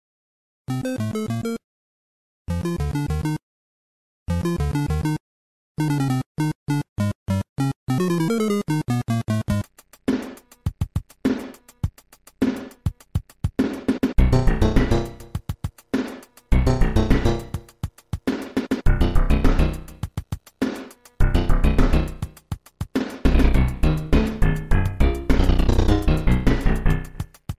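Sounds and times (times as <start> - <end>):
8-bit video game underground level chiptune music: 0.7 - 1.6, 2.5 - 3.4, 4.3 - 5.2, 5.8 - 11.8, 14.0 - 22.5, 23.1 - 27.4.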